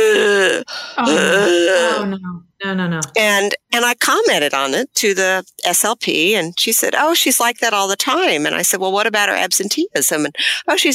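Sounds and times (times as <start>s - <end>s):
voice imitating labored wet breathing of a quadriplegic young woman: 0.0s - 2.1s
speech: 0.6s - 10.9s.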